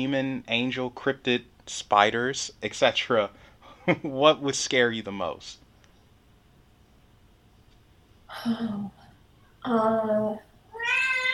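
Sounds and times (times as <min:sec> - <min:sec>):
speech: 0:00.0 - 0:05.6, 0:08.3 - 0:09.0, 0:09.6 - 0:10.5
cat screaming in drawn-out yowls: 0:10.7 - 0:11.3.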